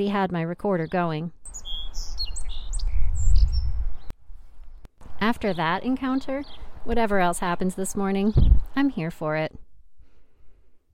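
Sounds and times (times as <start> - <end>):
speech: 0.0 - 1.4, 5.2 - 9.6
song sparrow singing in a tree in spring: 0.7 - 4.1, 5.0 - 9.1
heavy low wind rumble: 1.7 - 7.4, 8.2 - 8.8.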